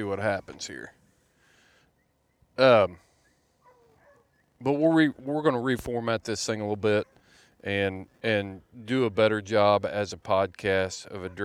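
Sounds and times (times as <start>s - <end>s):
speech: 0.0s - 1.0s, 2.6s - 3.1s, 4.6s - 11.4s
dog barking: 3.6s - 4.3s, 11.2s - 11.4s.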